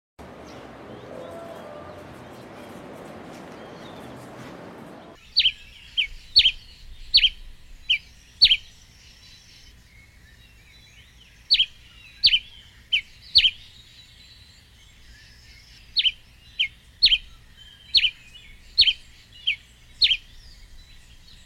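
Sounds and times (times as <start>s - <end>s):
White-lined Tanager song: 5.1s - 21.3s.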